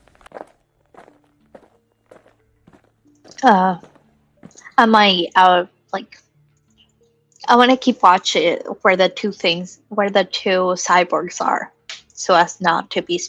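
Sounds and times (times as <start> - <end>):
soft footsteps: 0.0 - 4.8
speech: 3.4 - 3.9, 4.8 - 6.2, 7.5 - 13.2.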